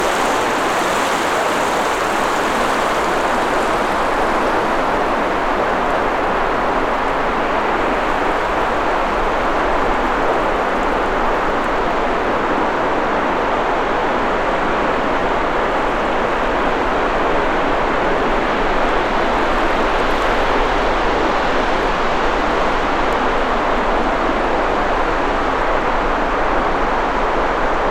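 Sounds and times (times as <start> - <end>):
waves at a beach: 0.0 - 27.8.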